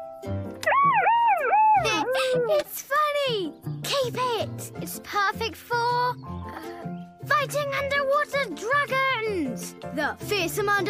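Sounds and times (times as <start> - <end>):
small broken electronic toy siren wailing: 0.6 - 2.4
speech: 1.8 - 10.8.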